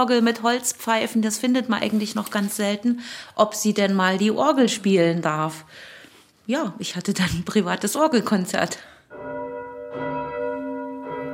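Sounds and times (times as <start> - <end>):
speech: 0.0 - 5.9, 6.5 - 9.4
church bells ringing in the morning: 9.1 - 11.3.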